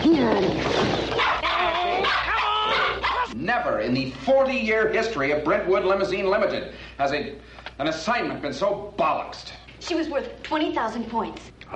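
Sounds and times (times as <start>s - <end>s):
speech: 0.3s - 1.2s, 3.5s - 11.7s
dog barking and yipping excitedly: 1.2s - 3.4s.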